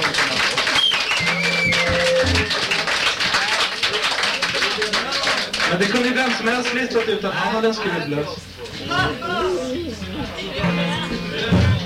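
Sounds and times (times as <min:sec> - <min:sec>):
crowd applauding: 0:00.0 - 0:07.5
brief tone: 0:01.2 - 0:02.7
speech: 0:05.8 - 0:11.6.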